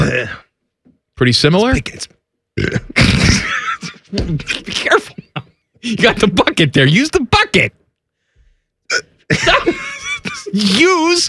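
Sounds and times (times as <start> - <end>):
speech: 0.0 - 0.4, 1.2 - 7.8, 8.9 - 11.2
person hiccuping uncontrollably after eating super spicy peppers: 2.6 - 3.4, 8.9 - 9.1
laughter: 9.3 - 11.2.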